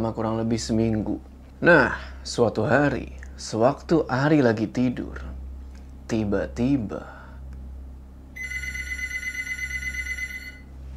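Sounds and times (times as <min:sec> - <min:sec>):
speech: 0:00.0 - 0:05.4, 0:06.1 - 0:07.2
low continuous hum: 0:00.0 - 0:10.9
telephone ringing with a high trilling bell tone: 0:08.4 - 0:10.7.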